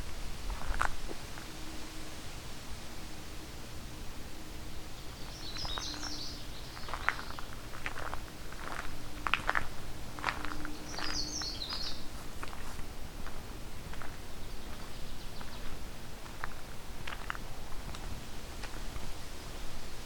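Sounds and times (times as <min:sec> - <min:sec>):
soft crunching footsteps in a forest: 0:00.0 - 0:01.6, 0:05.2 - 0:19.3
faint ambient forest noise: 0:00.0 - 0:20.0
songbird singing in a forest: 0:00.0 - 0:20.0.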